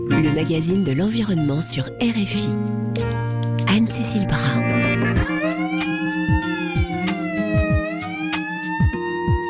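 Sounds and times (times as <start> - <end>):
speech: 0.2 - 6.5
alarm siren wailing with rising and falling pitch: 4.7 - 9.4.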